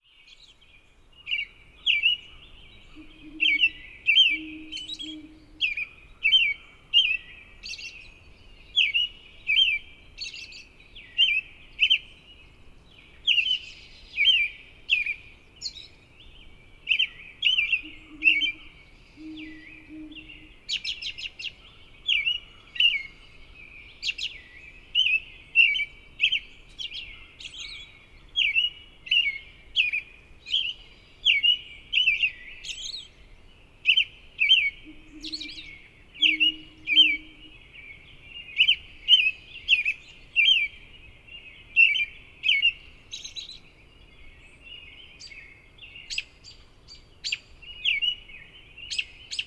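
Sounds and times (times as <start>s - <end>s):
robin singing: 0.1s - 49.4s.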